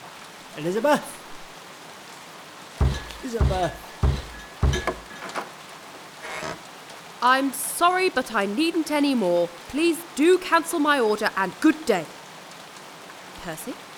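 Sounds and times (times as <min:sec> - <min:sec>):
steady rain: 0:00.0 - 0:13.9
speech: 0:00.6 - 0:01.2, 0:03.2 - 0:03.9, 0:07.2 - 0:12.2, 0:13.4 - 0:13.8
heavy knocks: 0:02.8 - 0:05.5.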